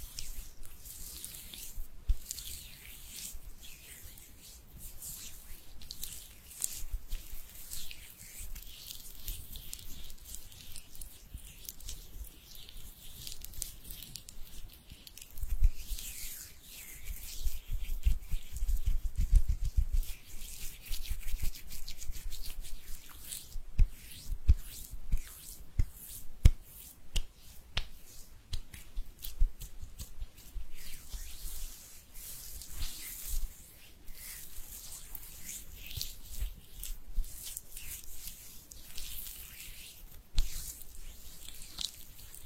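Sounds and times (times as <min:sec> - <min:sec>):
hands rubbing together: 0:00.0 - 0:42.4.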